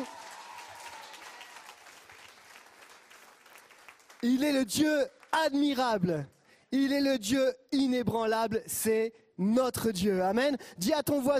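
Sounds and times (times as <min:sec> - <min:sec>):
large group cheering with scattered shouts: 0:00.0 - 0:01.6
large group clapping: 0:00.0 - 0:05.6
speech: 0:04.2 - 0:11.3.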